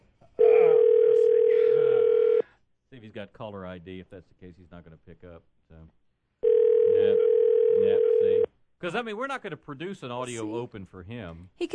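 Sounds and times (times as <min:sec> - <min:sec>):
telephone dial tone: 0:00.8 - 0:02.4, 0:06.4 - 0:08.5
speech: 0:03.2 - 0:06.0, 0:07.8 - 0:11.7.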